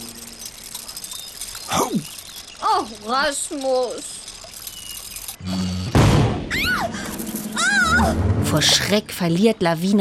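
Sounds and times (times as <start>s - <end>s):
brief mechanical hum of a wind-up toy ship cannon: 0.0s - 8.6s
speech: 1.7s - 2.1s, 2.7s - 4.2s, 8.0s - 9.9s
wind-up toy ship cannon firing with a loud boom: 6.0s - 6.5s.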